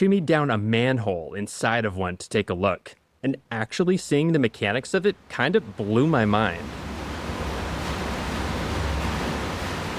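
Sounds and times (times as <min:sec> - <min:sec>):
speech: 0:00.0 - 0:06.9
meltwater rushing into an underground reservoir: 0:04.0 - 0:09.9.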